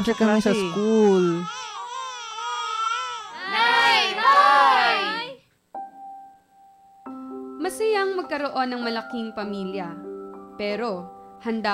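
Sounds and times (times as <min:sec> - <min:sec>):
speech: 0:00.0 - 0:01.6, 0:07.7 - 0:11.7
baby crying: 0:00.0 - 0:05.4.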